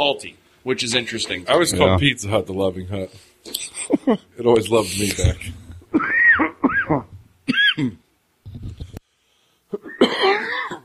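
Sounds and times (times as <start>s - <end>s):
speech: 0.0s - 7.1s, 7.8s - 8.0s
person coughing and clearing throat: 5.9s - 8.0s, 9.8s - 10.8s.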